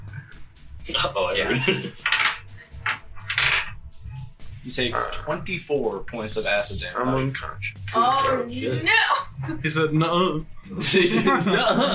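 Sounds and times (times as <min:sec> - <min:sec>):
speech: 0:00.9 - 0:02.2, 0:04.6 - 0:11.9
laughter: 0:00.9 - 0:02.7, 0:04.8 - 0:07.3, 0:10.7 - 0:11.9
large handful of dice rolled during a tabletop role-playing game: 0:02.0 - 0:03.7.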